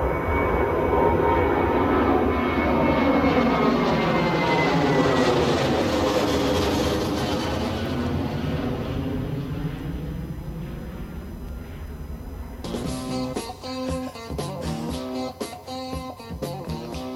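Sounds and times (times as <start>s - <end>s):
jet airplane engine roaring: 0.0s - 17.1s.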